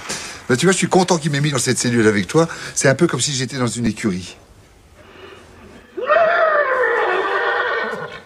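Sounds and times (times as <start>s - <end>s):
speech: 0.5s - 4.5s
person imitating a thirsty horse's whinny: 5.8s - 8.2s.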